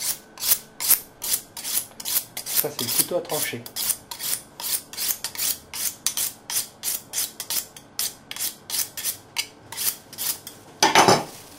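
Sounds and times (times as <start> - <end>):
knife honed on a sharpening steel: 0.0 - 10.6
speech: 2.6 - 3.8.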